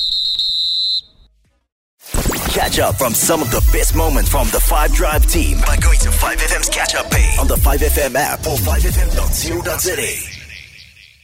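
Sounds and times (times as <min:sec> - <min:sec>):
referee whistle blast: 0:00.0 - 0:01.2
speech: 0:02.6 - 0:10.3.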